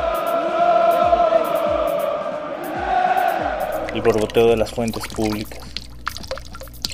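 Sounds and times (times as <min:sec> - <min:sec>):
large stadium crowd shouting: 0:00.0 - 0:04.1
speech: 0:03.9 - 0:05.7.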